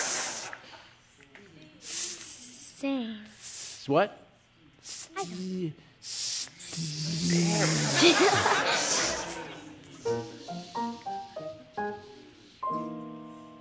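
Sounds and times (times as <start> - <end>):
steam hissing from a radiator: 0.0 - 0.6, 1.8 - 3.9, 4.8 - 5.4, 6.0 - 11.3
speech: 2.8 - 4.2, 4.8 - 6.2, 6.8 - 10.2
people chuckling: 7.4 - 11.8.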